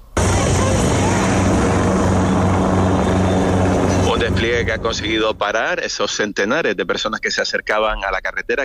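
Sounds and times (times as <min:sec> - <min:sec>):
army helicopter rotor thudding at the outskirts of Castillejo: 0:00.0 - 0:05.7
speech: 0:04.4 - 0:08.6.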